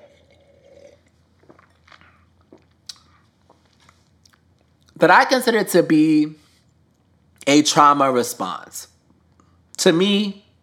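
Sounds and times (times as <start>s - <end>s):
person sipping a drink with slurps, swallows and wet clicks: 0.0s - 4.5s
speech: 5.0s - 6.4s, 7.4s - 8.9s, 9.8s - 10.4s.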